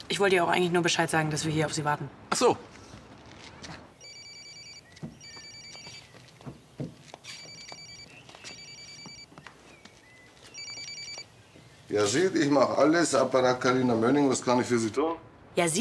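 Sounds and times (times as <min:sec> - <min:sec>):
speech: 0:00.1 - 0:02.8, 0:12.0 - 0:15.7
mobile phone ringing with a repeating electronic tone: 0:04.0 - 0:06.1, 0:07.2 - 0:09.3, 0:10.5 - 0:11.3.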